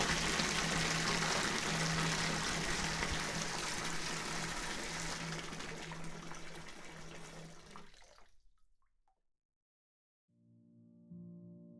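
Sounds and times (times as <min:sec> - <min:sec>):
water pouring into a bathtub: 0:00.0 - 0:08.6.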